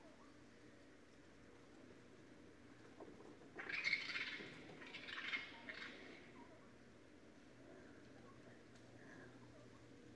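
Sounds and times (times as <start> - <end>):
raccoon squealing: 3.6 - 6.0.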